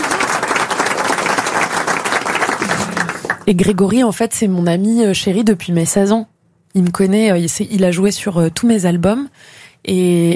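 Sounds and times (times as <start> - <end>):
audience applause: 0.0 - 3.5
speech: 3.5 - 10.3.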